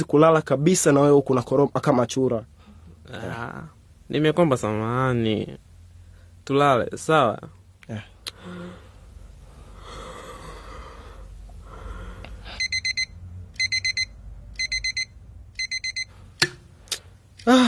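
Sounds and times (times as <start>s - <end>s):
speech: 0.0s - 2.5s, 3.1s - 5.7s, 6.5s - 8.8s, 17.5s - 17.6s
breathing: 2.5s - 3.0s, 6.0s - 6.4s, 8.3s - 12.8s
alarm clock ringing with high pulsing electronic ringing: 12.6s - 16.1s.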